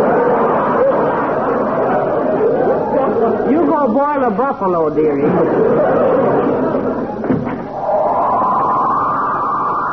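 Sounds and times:
crowd chatter and laughter: 0.0 - 4.2, 4.8 - 9.8
speech: 3.8 - 6.5
door slamming shut: 7.2 - 7.8.

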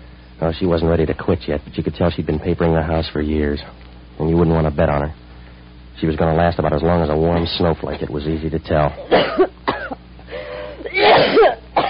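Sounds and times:
speech: 0.4 - 5.2, 6.0 - 10.0
person clearing throat with rasping fit: 9.0 - 10.0, 10.6 - 11.8
person coughing harshly and wetly: 9.0 - 11.8.

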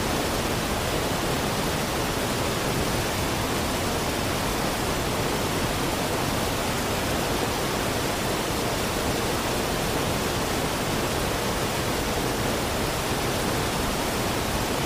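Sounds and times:
forest waterfall roaring: 0.0 - 14.8.

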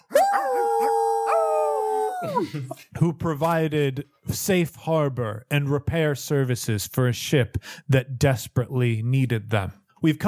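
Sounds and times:
crowd howling like wolves: 0.1 - 2.5
speech: 2.2 - 10.2.

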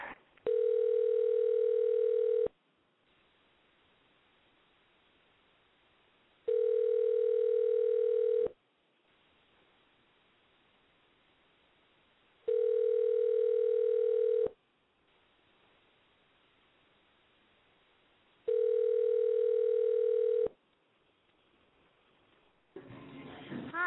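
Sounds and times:
outgoing phone call ringback tone: 0.5 - 2.5, 6.5 - 8.6, 12.5 - 14.6, 18.5 - 20.5.

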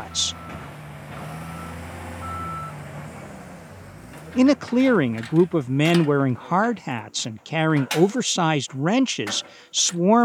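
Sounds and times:
bulldozers, dump trucks and backhoes rumbling: 0.0 - 10.2
high reversing beep: 0.1 - 0.7, 1.5 - 2.8
speech: 4.4 - 10.2.

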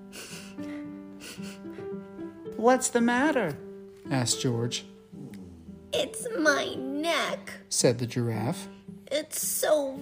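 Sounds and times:
sharp breathy sniffs: 0.0 - 2.0
speech: 2.6 - 4.9, 6.0 - 9.9.

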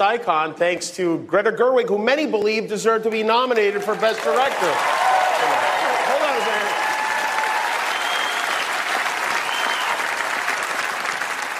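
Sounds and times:
speech: 0.0 - 6.8
large audience applauding: 3.6 - 11.5
person cheering: 4.0 - 8.6.

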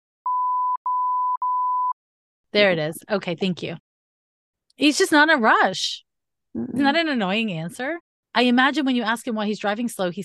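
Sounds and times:
high-pitched censor beep over a man's spoken name: 0.3 - 2.0
speech: 2.5 - 3.8, 4.8 - 6.0, 6.6 - 10.2.

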